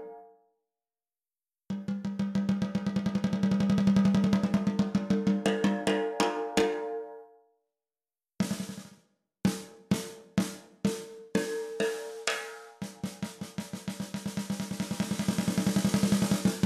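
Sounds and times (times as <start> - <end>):
steel snare drum: 1.8 - 6.8, 8.4 - 16.6.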